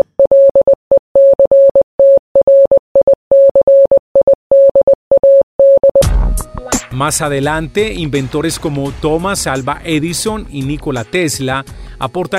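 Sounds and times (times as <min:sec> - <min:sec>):
electronic tone beeping a received telegraph message in Morse code: 0:00.0 - 0:06.0
speech: 0:07.0 - 0:12.3.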